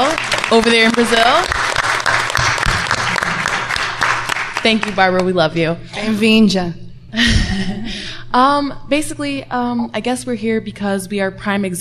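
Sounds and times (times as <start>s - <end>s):
audience applause for a guest at a panel event: 0.0s - 5.0s
speech: 0.5s - 1.6s, 4.6s - 11.7s.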